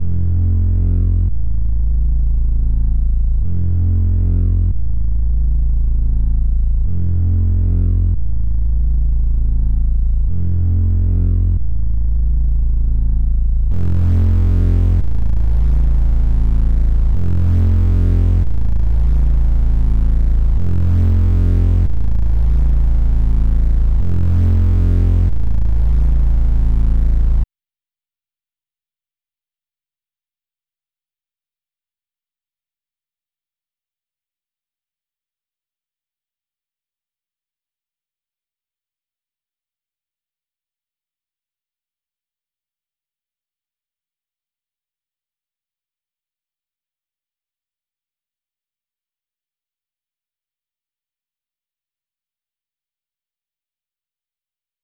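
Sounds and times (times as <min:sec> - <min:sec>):
bass in A minor: 0:00.0 - 0:27.5.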